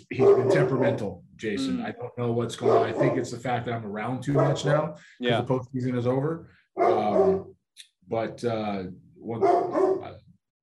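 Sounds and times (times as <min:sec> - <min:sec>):
dog barking and growling: 0:00.0 - 0:01.1, 0:01.9 - 0:03.4, 0:04.2 - 0:04.9, 0:06.8 - 0:07.5, 0:09.4 - 0:10.2
speech: 0:00.2 - 0:09.9.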